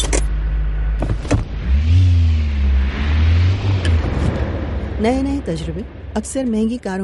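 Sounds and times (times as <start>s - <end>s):
triple-turbocharged Volvo Drive-E car engine of 450 horsepower revving: 0.0s - 7.0s
speech: 5.0s - 7.0s.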